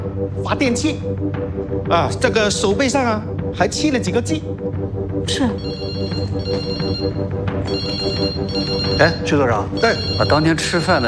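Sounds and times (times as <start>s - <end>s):
speech: 0.2s - 11.0s
telephone ringing with an electronic ringtone: 5.6s - 11.0s.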